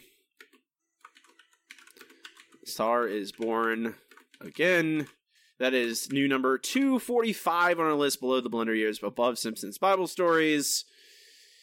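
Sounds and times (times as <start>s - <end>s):
typing on a computer keyboard: 0.4s - 5.2s
speech: 2.7s - 10.9s.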